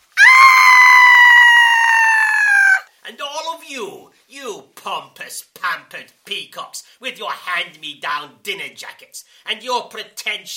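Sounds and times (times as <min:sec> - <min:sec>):
dramatic theatrical human scream: 0:00.2 - 0:02.9
speech: 0:03.7 - 0:10.5.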